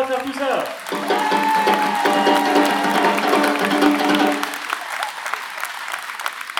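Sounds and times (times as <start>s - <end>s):
audience applause: 0.0s - 6.5s
speech: 0.2s - 1.2s.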